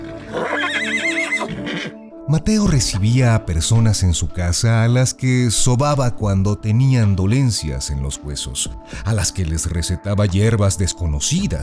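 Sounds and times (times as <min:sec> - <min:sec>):
male mule neighing: 0:00.1 - 0:02.0
speech: 0:02.3 - 0:11.6.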